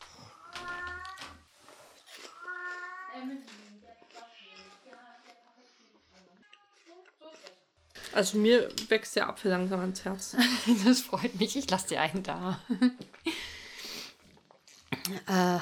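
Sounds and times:
cat meowing: 0.1 - 1.5, 2.3 - 3.3
speech: 8.2 - 13.2, 15.2 - 15.6.

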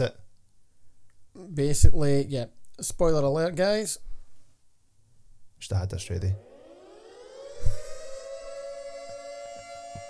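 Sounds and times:
speech: 0.0 - 0.2, 1.5 - 4.1, 5.6 - 6.5
wailing siren sound effect: 6.2 - 10.0.

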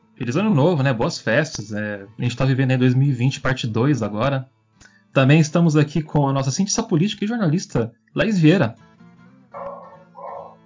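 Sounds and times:
speech: 0.2 - 4.6, 5.2 - 8.9
dogs barking: 9.6 - 10.6.

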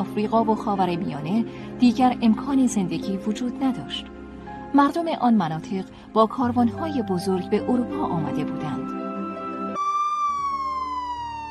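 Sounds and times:
speech: 0.1 - 8.9
police car siren wailing: 9.2 - 11.4.

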